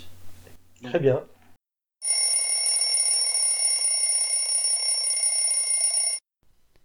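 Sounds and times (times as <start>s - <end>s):
speech: 0.8s - 1.4s
alarm clock ringing with a bright electronic tone: 2.0s - 6.2s.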